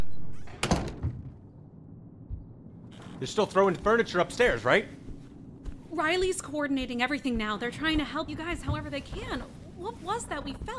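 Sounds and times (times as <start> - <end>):
door pushed shut: 0.4 - 1.4
speech: 3.2 - 5.0, 6.0 - 10.7.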